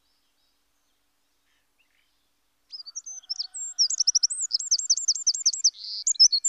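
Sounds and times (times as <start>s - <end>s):
Eurasian wren singing: 0.0s - 6.4s.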